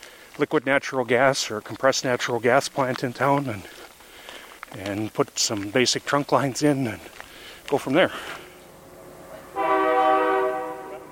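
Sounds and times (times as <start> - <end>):
speech: 0.4 - 3.8, 4.7 - 8.4
passing train horn blast: 8.4 - 11.1.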